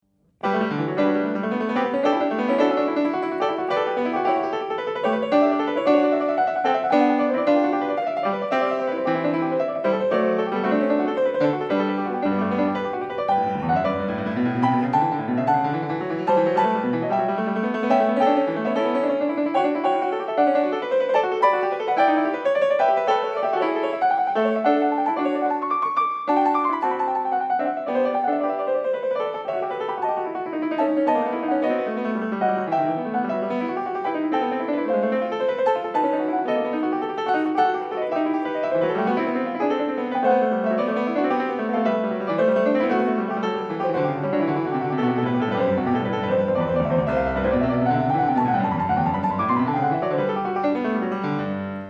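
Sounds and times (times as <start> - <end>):
two pianos playing a classical piece: 0.0 - 51.8.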